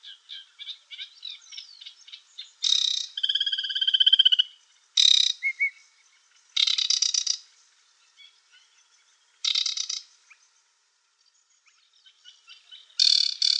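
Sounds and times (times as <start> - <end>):
aquatic warbler singing: 0.0 - 13.5.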